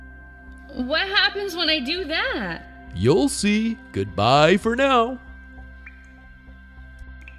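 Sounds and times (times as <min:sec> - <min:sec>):
speech: 0:00.7 - 0:05.2
water from a melting snowman dripping into a small puddle: 0:05.6 - 0:07.3.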